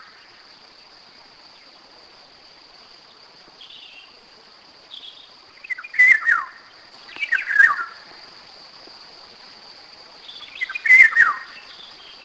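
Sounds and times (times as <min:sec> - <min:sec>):
Eurasian golden oriole singing whistled phrases: 0:04.9 - 0:08.0, 0:10.2 - 0:12.2.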